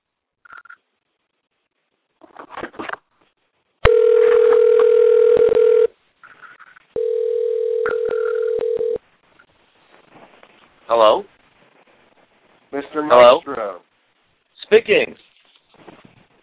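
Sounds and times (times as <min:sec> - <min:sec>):
telephone ringing tones: 0:03.8 - 0:05.9, 0:07.0 - 0:09.0
speech: 0:14.8 - 0:15.0.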